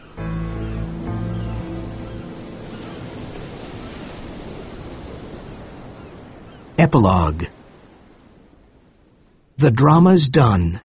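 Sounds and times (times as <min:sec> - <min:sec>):
sustained low musical tones: 0:00.0 - 0:04.4
ocean waves rolling: 0:00.0 - 0:10.8
speech: 0:06.8 - 0:07.6, 0:09.6 - 0:10.8.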